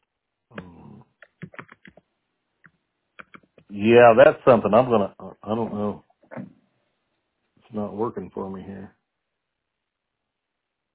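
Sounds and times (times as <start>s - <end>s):
typing on a computer keyboard while entering a description for a post: 1.2s - 2.0s, 3.2s - 3.6s
speech: 3.8s - 6.0s, 7.7s - 9.0s.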